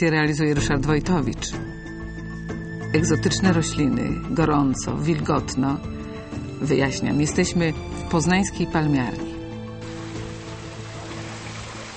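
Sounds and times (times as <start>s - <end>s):
speech: 0.0s - 1.7s, 2.9s - 6.0s, 6.6s - 9.4s
water spraying like light rain onto plants in a palm house: 9.8s - 11.9s.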